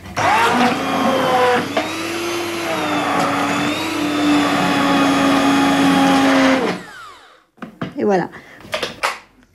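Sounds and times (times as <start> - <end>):
kitchen blender puréeing soup: 0.0 - 7.5
speech: 8.1 - 8.4.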